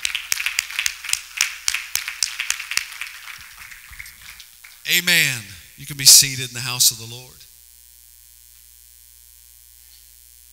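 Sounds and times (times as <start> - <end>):
crowd clapping in rhythm: 0.0 - 5.6
speech: 4.9 - 7.5.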